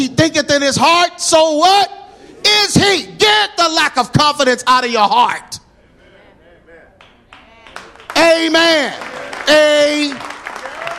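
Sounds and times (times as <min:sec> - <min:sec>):
speech: 0:00.0 - 0:02.0, 0:02.6 - 0:05.6, 0:08.2 - 0:10.3
audience clapping: 0:07.0 - 0:10.9.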